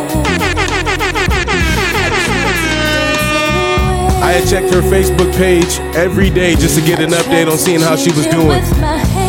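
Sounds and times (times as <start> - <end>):
air horn blasts: 0.1 - 4.2
speech: 4.4 - 9.1.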